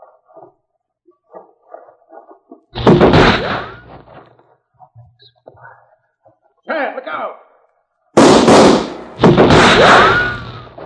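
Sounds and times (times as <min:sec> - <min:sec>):
revolver gunshots in a western-style fight: 0:02.8 - 0:03.9, 0:08.2 - 0:10.8
speech: 0:06.8 - 0:07.4
bullet ricochet whine: 0:08.2 - 0:10.7.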